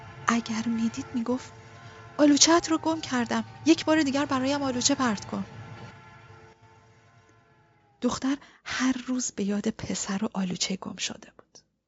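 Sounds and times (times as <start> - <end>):
train rumbling past: 0.0 - 9.2
speech: 0.4 - 1.6, 2.2 - 5.6, 8.0 - 11.4.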